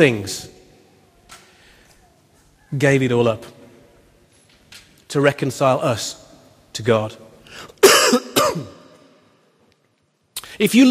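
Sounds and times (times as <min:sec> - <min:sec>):
speech: 0:00.0 - 0:00.5, 0:02.7 - 0:03.6, 0:05.1 - 0:06.2, 0:06.8 - 0:08.8, 0:10.6 - 0:10.8
person coughing into a microphone: 0:07.8 - 0:08.8.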